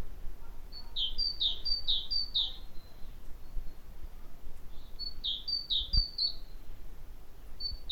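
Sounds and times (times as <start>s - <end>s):
faint background hiss: 0.0s - 7.9s
great tit Parus major singing: 0.5s - 3.9s, 4.7s - 6.7s, 7.6s - 7.9s.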